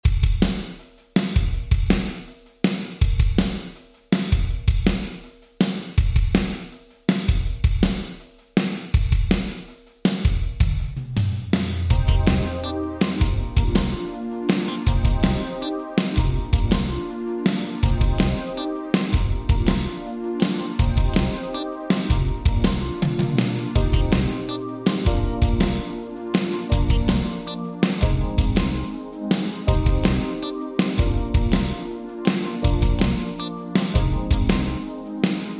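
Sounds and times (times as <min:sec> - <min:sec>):
drums with vintage digital room ambience reverb: 0:00.0 - 0:35.5.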